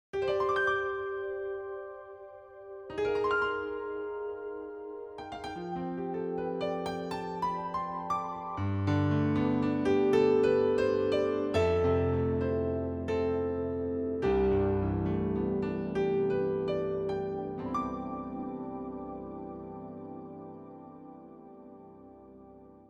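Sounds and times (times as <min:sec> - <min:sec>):
stereo piano pad: 0:00.2 - 0:22.8.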